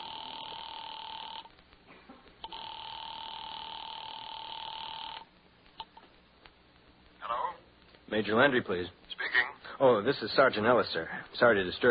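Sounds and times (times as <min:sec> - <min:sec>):
electronic telephone ring tones heard from the caller's end after dialing: 0:00.0 - 0:01.5, 0:02.5 - 0:05.3
speech: 0:08.1 - 0:09.2, 0:09.8 - 0:11.8.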